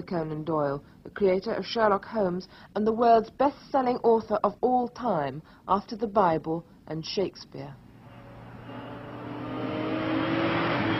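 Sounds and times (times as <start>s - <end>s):
speech: 0.0s - 7.8s
red sports car engine revving and accelerating: 7.9s - 10.9s.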